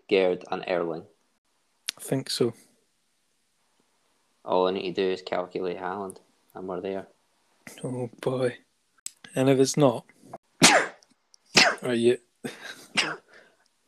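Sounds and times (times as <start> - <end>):
speech: 0.1 - 1.1, 2.0 - 2.7, 4.4 - 8.6, 9.3 - 10.1, 11.8 - 13.2
person sneezing at range: 10.6 - 11.0, 11.6 - 11.9, 12.6 - 13.4.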